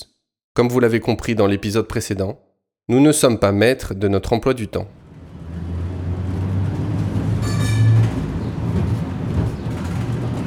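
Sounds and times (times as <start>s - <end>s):
speech: 0.6s - 5.0s
tram in motion heading to the city centre in Salt Lake City, Utah: 4.8s - 10.4s
high-pitched whine or squeal of a tram: 5.6s - 9.0s.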